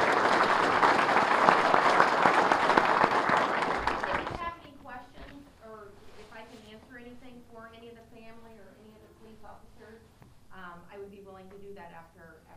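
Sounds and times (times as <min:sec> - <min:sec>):
audience applause: 0:00.0 - 0:04.4.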